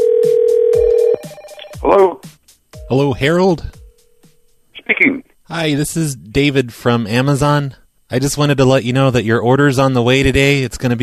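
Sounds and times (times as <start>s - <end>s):
telephone ringback tone for a prank call: 0.0s - 1.9s
rhythmic thumping beats: 0.2s - 4.7s
speech: 2.9s - 3.8s, 5.0s - 11.0s.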